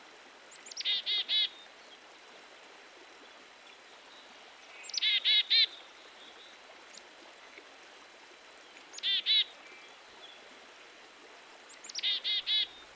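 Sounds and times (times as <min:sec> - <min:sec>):
black-capped chickadee calling: 0:00.7 - 0:01.5, 0:04.8 - 0:05.7, 0:09.0 - 0:09.5, 0:11.9 - 0:12.8.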